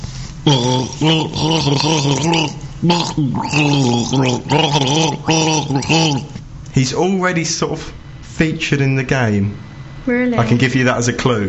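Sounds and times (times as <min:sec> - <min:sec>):
person gargling as a clue in a guessing game: 0:00.4 - 0:06.4
speech: 0:00.5 - 0:11.4.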